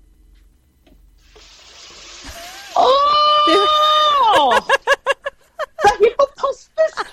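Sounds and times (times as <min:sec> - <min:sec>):
water running from a tap into a glass: 0:01.2 - 0:02.8
laughter: 0:03.4 - 0:06.2.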